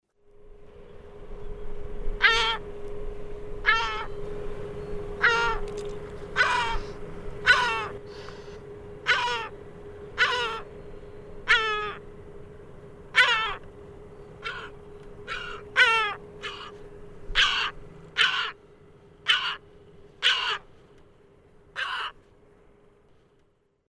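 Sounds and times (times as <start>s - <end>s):
Larus dominicanus gull: 2.2s - 2.6s, 3.6s - 4.1s, 5.2s - 5.6s, 6.4s - 8.0s, 9.1s - 9.5s, 10.2s - 10.6s, 11.5s - 12.0s, 13.2s - 13.6s, 14.4s - 14.7s, 15.3s - 16.8s, 17.4s - 18.6s, 19.3s - 19.6s, 20.2s - 20.6s, 21.8s - 22.2s.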